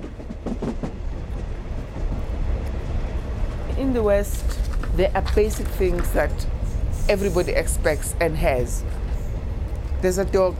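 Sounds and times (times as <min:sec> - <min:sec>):
health-care train wheels clattering on railway track: 0:00.0 - 0:09.2
health-care train rumbling along a railway track: 0:00.0 - 0:10.5
speech: 0:03.8 - 0:09.0, 0:10.0 - 0:10.5.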